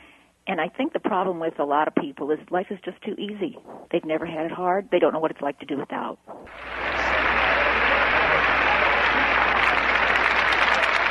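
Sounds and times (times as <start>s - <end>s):
speech: 0.5s - 6.8s
applause from a sizable crowd: 6.5s - 11.0s.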